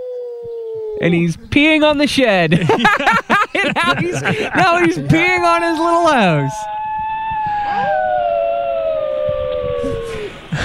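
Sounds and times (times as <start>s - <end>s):
singing dog howling: 0.0s - 1.0s, 5.1s - 10.5s
speech: 0.4s - 6.8s
laughter: 2.5s - 6.6s, 10.2s - 10.6s.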